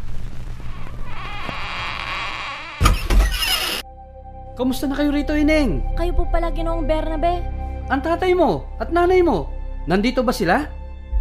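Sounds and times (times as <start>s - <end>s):
door creaking open on a squeaky hinge: 0.6s - 3.8s
door rattling as it swings fully: 1.2s - 3.8s
speech: 4.6s - 10.8s.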